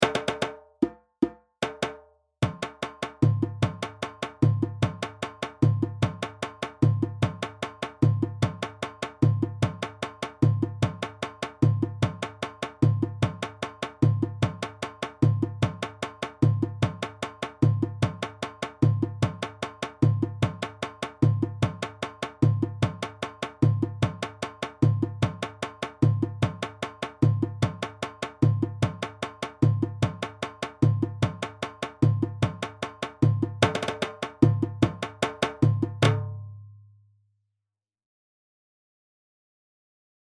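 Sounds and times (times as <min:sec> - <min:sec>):
sangban drum: 0:00.0 - 0:36.8.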